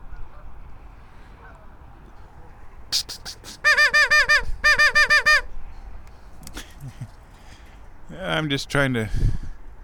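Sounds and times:
ducks squawking: 0:03.3 - 0:05.5
speech: 0:08.2 - 0:09.4.

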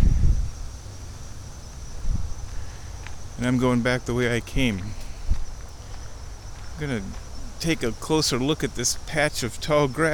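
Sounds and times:
wind buffeting the microphone: 0:00.0 - 0:00.7, 0:01.8 - 0:02.6, 0:04.5 - 0:07.6
frogs calling from the water: 0:00.0 - 0:10.1
speech: 0:03.4 - 0:05.0, 0:06.8 - 0:10.1.

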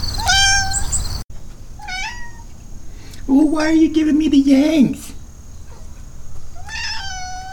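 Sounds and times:
low hum: 0:00.0 - 0:07.5
cat meowing: 0:00.1 - 0:01.0, 0:01.8 - 0:02.5, 0:06.6 - 0:07.5
speech: 0:03.3 - 0:05.1.

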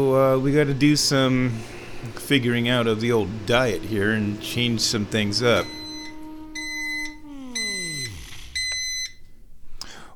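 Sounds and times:
speech: 0:00.0 - 0:05.8
microwave low motor hum: 0:00.0 - 0:09.2
microwave beeping after reheating tea: 0:04.1 - 0:09.4.

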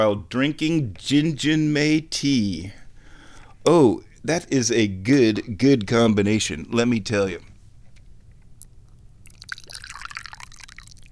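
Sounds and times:
speech: 0:00.0 - 0:02.8, 0:03.6 - 0:07.5
low hum: 0:00.0 - 0:11.1
tea pouring into a cup: 0:09.2 - 0:11.1.

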